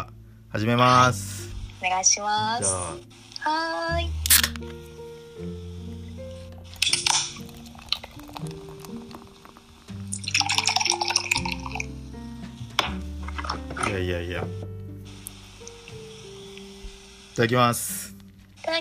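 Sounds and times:
soft steady music: 0:00.0 - 0:18.7
speech: 0:00.5 - 0:05.6, 0:13.9 - 0:14.7, 0:17.4 - 0:18.1
Sapporo Classic beer cans being cracked open: 0:04.2 - 0:04.7, 0:06.6 - 0:11.9, 0:12.8 - 0:14.0.

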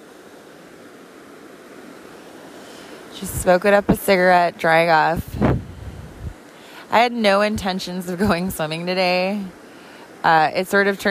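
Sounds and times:
rushing river water: 0:00.0 - 0:11.0
soft wind hiss by a river: 0:00.0 - 0:11.0
speech: 0:03.2 - 0:05.5, 0:06.9 - 0:09.6, 0:10.2 - 0:11.0.

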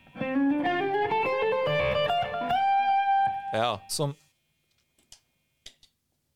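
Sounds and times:
distorted electric guitar playing a quick solo run: 0:00.0 - 0:03.6
speech: 0:03.5 - 0:04.2.

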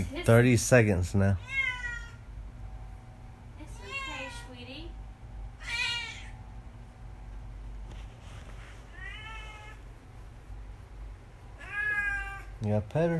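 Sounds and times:
steady low hum: 0:00.0 - 0:13.1
speech: 0:00.2 - 0:01.7, 0:12.6 - 0:13.1
cat yowling: 0:01.4 - 0:02.2, 0:03.6 - 0:04.6, 0:05.6 - 0:06.4, 0:08.9 - 0:09.9, 0:11.6 - 0:12.6.

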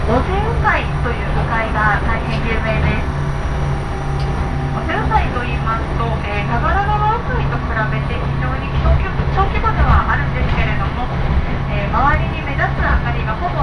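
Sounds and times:
local railway train engine drone and rumble: 0:00.0 - 0:13.6
passengers chatting inside a local railway train: 0:00.0 - 0:13.6.

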